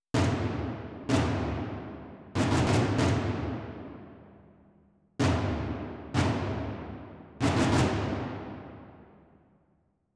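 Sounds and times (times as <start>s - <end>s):
tom drums: 0.1s - 4.1s, 5.2s - 8.8s.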